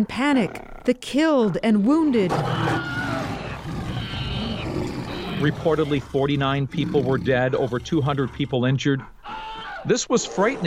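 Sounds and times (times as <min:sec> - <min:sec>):
speech: 0:00.0 - 0:02.9, 0:05.4 - 0:09.2, 0:09.8 - 0:10.6
Bengal tiger roaring: 0:02.2 - 0:10.6.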